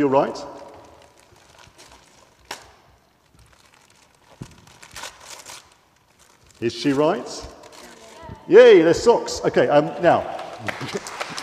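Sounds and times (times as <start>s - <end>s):
speech: 0.0s - 0.6s, 6.6s - 7.6s, 8.5s - 11.0s
wrapping paper crinkling and tearing as a gift of socks is unwrapped: 0.2s - 8.4s.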